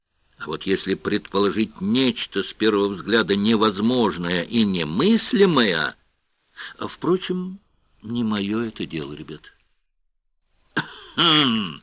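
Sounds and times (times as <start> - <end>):
speech: 0.4 - 6.0, 6.6 - 9.6, 10.8 - 11.8
male reader clearing his throat into his fist: 10.8 - 11.8.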